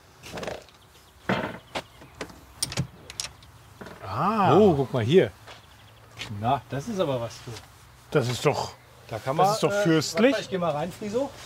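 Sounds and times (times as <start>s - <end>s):
door of a small rented house being opened: 1.3s - 4.0s
speech: 4.2s - 5.4s, 6.3s - 11.4s.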